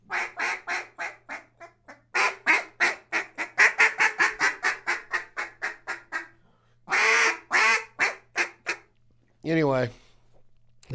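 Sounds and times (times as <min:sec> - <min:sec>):
Omega 4 duck call blown: 0:00.1 - 0:08.9
speech: 0:09.5 - 0:10.0.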